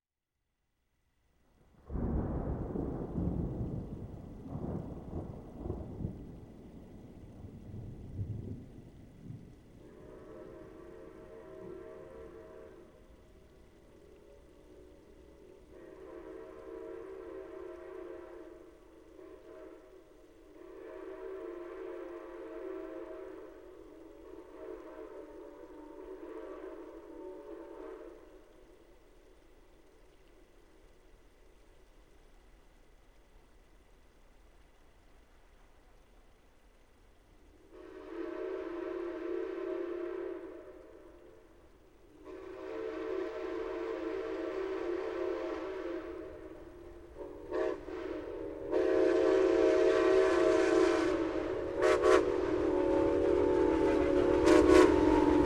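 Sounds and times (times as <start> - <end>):
thunderstorm: 1.7 - 13.8, 45.7 - 55.4
steam locomotive passing in a thunderstorm: 2.5 - 31.2, 36.8 - 55.4.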